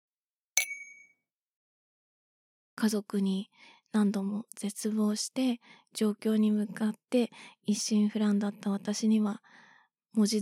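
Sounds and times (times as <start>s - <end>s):
glasses clinking in a toast: 0.6s - 1.1s
speech: 2.8s - 10.4s.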